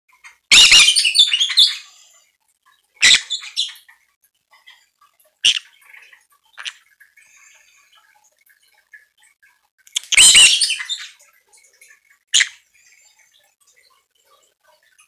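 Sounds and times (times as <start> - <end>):
green-cheeked parakeet calling: 0.5 - 1.9, 3.0 - 3.8, 5.4 - 5.7, 10.0 - 11.2, 12.3 - 12.6.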